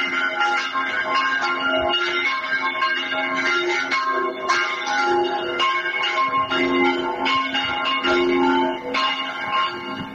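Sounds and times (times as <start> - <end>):
several church bells pealing together: 0.0 - 10.1.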